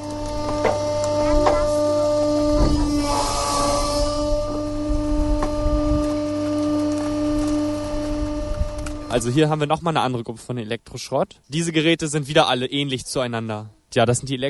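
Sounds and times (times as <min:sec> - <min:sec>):
waste compactor grinding and hissing as it compresses: 0:00.0 - 0:09.8
waste compactor press motor droning and whining: 0:00.0 - 0:09.8
speech: 0:09.2 - 0:14.4.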